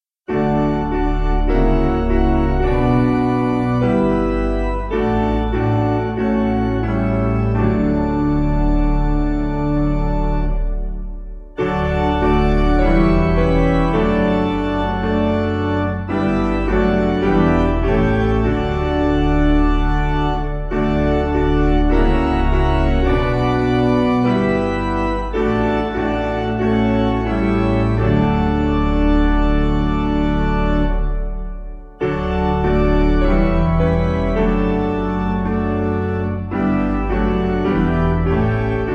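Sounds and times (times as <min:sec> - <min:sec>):
piano: 0:00.2 - 0:38.9
organ: 0:00.3 - 0:38.9.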